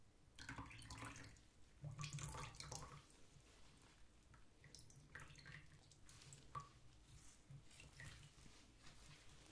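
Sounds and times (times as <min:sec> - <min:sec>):
water poured for cleaning a wound: 0:00.4 - 0:03.2, 0:04.6 - 0:09.2.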